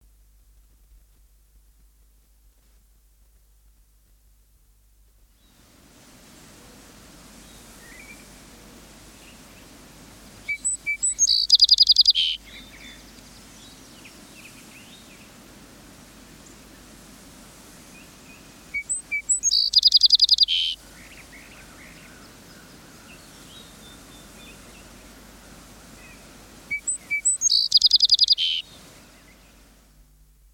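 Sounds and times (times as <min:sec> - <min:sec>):
songbirds singing: 0:07.4 - 0:15.4, 0:17.9 - 0:29.8
song sparrow singing: 0:10.4 - 0:15.4, 0:18.0 - 0:25.1, 0:25.9 - 0:29.6.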